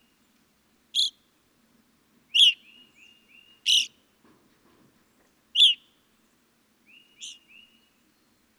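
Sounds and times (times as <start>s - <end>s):
evening grosbeak piercing chirps: 1.0s - 1.2s, 2.4s - 2.8s, 3.6s - 3.9s, 7.0s - 7.7s.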